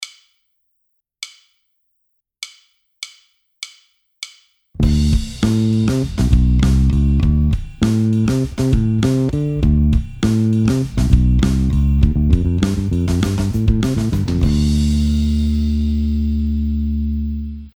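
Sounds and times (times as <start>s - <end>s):
bass phrase: 4.8s - 17.7s.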